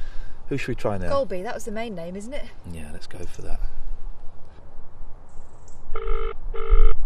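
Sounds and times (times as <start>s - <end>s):
low hiss: 0.0s - 6.9s
speech: 0.5s - 3.8s
telephone ringing tone over a call line: 6.0s - 7.0s.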